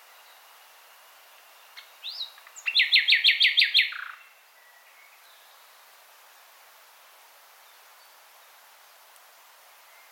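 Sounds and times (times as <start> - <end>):
common nightingale Luscinia megarhynchos singing: 1.4 - 5.6.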